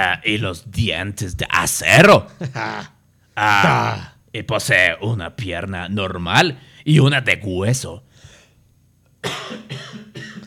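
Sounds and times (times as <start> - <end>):
speech: 0.0 - 8.1
person coughing from the cold: 9.2 - 10.4.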